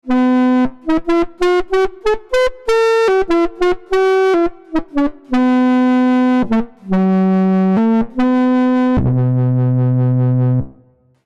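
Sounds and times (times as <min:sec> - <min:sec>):
plastic saxophone: 0:00.0 - 0:10.6.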